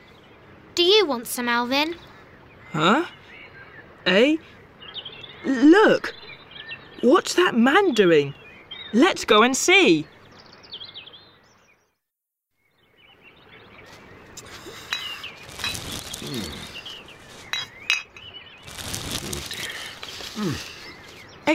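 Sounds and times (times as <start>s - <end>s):
speech: 0.8s - 2.1s, 2.7s - 3.2s, 4.0s - 4.6s, 5.4s - 6.2s, 7.0s - 10.1s
rustling and sloshing handling noise of bottles and plastic bags from a lake: 13.8s - 21.4s
glass bottles clinking together: 17.5s - 18.3s.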